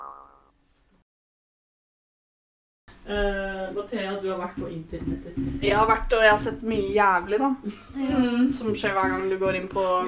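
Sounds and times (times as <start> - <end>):
springy boing sound effect: 0.0 - 0.5
speech: 3.1 - 10.0.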